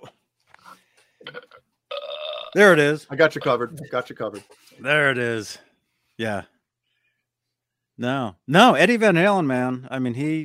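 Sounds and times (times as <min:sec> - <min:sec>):
person burping: 0:01.2 - 0:02.6
speech: 0:02.6 - 0:06.5, 0:08.0 - 0:10.4.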